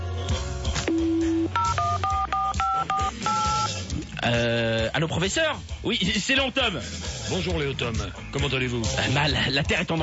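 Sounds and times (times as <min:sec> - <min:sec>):
mobile phone keypad tones as a number is dialed: 0:00.9 - 0:03.7
speech: 0:04.2 - 0:10.0.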